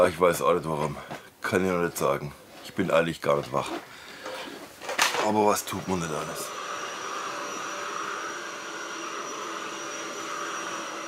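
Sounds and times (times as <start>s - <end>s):
speech: 0.0s - 3.9s, 5.2s - 6.6s
vacuum cleaner cleaning up dog hair: 5.2s - 11.0s.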